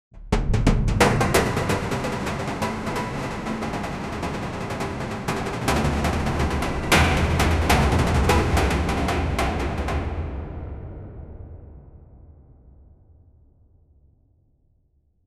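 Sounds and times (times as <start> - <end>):
rhythmic metal buildup: 0.2 - 10.8.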